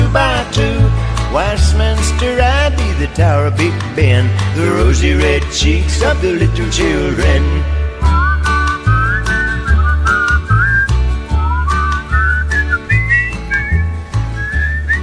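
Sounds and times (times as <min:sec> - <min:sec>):
musical backing with a strong bouncing bass beat: 0:00.0 - 0:15.0
speech: 0:01.8 - 0:07.8
person whistling a lilting tune: 0:08.0 - 0:15.0.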